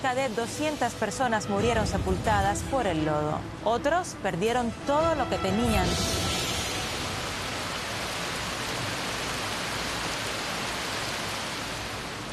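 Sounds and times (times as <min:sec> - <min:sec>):
speech: 0:00.0 - 0:06.2
heavy rain pouring down on surfaces: 0:00.0 - 0:12.3.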